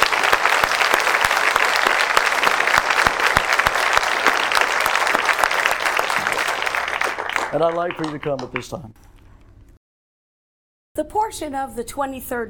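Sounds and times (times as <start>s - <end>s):
sustained applause from a sizable audience: 0.0s - 8.9s
speech: 7.5s - 9.0s, 11.0s - 12.4s.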